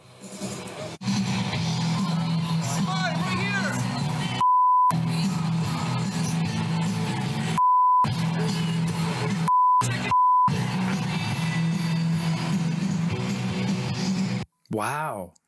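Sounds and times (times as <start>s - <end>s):
noisy outdoor crowd on a campaign trail: 0.0s - 13.4s
censor bleeps: 4.4s - 4.9s, 9.5s - 10.5s
man angrily shouting an insult: 14.7s - 15.3s
speech: 14.8s - 15.4s.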